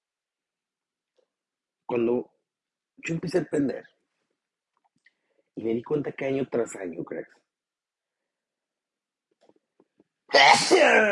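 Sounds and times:
speech: 1.9 - 2.3, 3.0 - 4.0, 5.6 - 7.4, 10.3 - 11.1
loud sneeze with a strained voiced tail: 10.3 - 11.1.

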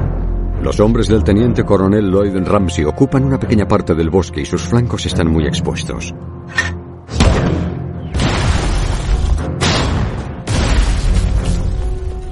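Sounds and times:
speech: 0.6 - 6.8
German mortar and artillery explosions in a forest in France: 7.1 - 12.2.

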